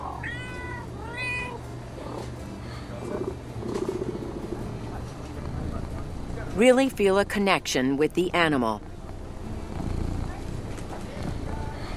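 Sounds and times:
faint hum: 0.0s - 11.9s
cat meowing: 0.2s - 1.6s
low steady rumbling purr-like texture: 2.0s - 11.9s
speech: 6.6s - 8.9s.

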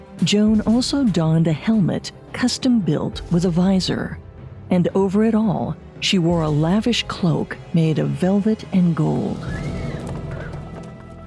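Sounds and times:
speech: 0.2s - 9.6s
horse hooves clip-clopping: 9.6s - 11.2s.

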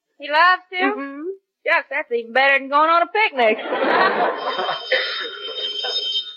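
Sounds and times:
speech: 0.2s - 5.3s
laughter: 3.4s - 6.2s
telephone bell ringing: 3.7s - 6.3s.

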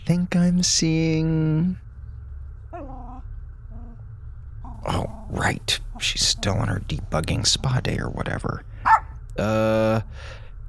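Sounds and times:
speech: 0.1s - 1.8s, 4.8s - 8.7s, 9.4s - 10.4s
dog barking aboard a space station: 8.8s - 9.2s
faint breathy hiss: 9.5s - 10.6s.

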